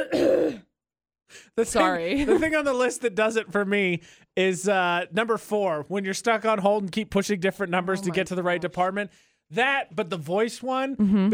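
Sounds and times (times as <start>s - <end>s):
person coughing harshly: 0.0s - 0.7s
speech: 1.6s - 11.3s.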